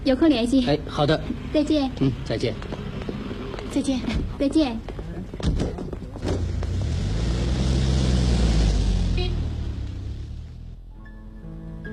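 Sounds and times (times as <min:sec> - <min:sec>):
speech: 0:00.0 - 0:02.8, 0:03.7 - 0:05.9
car driving off: 0:00.8 - 0:04.6, 0:05.2 - 0:11.0.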